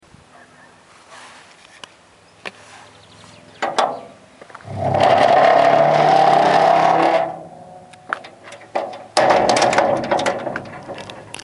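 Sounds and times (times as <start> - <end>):
gate: 3.6 - 11.4.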